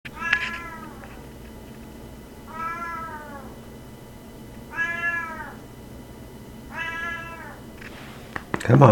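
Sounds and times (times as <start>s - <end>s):
low steady background hum: 0.1s - 8.9s
domestic cat meowing in Quebec: 0.2s - 1.1s, 2.5s - 3.6s, 4.7s - 5.6s, 6.7s - 7.7s.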